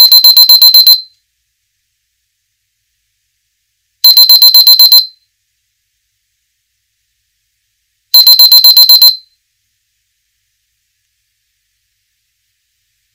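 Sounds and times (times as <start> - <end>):
Nokia phone ringtone: 0.0 - 1.0, 4.0 - 5.1, 8.2 - 9.2.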